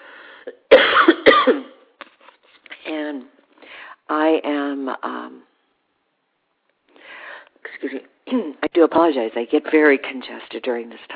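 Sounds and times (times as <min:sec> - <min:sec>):
harsh chesty coughs: 0:00.7 - 0:01.9
speech: 0:04.3 - 0:05.4, 0:07.8 - 0:11.1.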